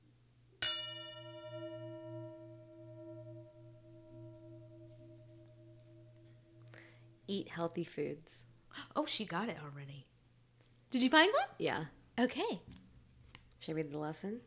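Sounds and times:
singing bowl struck, bright metallic ring: 0.6s - 8.3s
speech: 7.3s - 10.1s, 10.9s - 12.8s, 13.6s - 14.4s.

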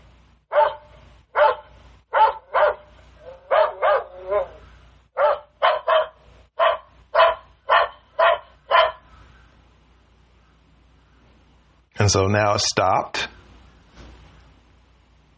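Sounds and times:
faint low hum: 0.0s - 15.3s
looped recording of a dog barking from an Alexa guard dog skill: 0.5s - 4.6s, 5.2s - 9.1s
speech: 12.0s - 13.3s.

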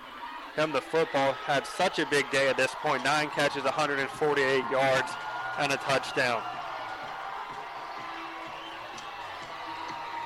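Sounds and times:
large football stadium crowd roaring during a game: 0.0s - 10.2s
speech: 0.6s - 6.6s.

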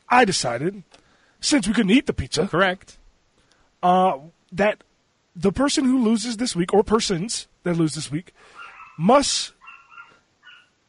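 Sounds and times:
speech: 0.1s - 3.0s, 3.8s - 9.6s
dog barking excitedly about pizza: 8.6s - 10.8s.

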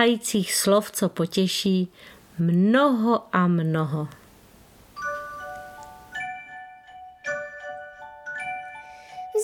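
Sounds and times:
speech: 0.0s - 4.2s
bell ringing: 5.0s - 9.3s.

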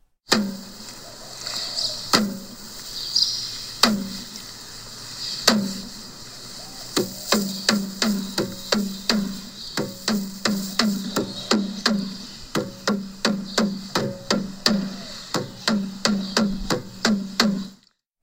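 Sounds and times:
faint constant hiss: 0.0s - 15.4s
pahu drum beating: 0.3s - 0.8s, 2.0s - 2.8s, 3.8s - 4.4s, 5.4s - 17.8s.

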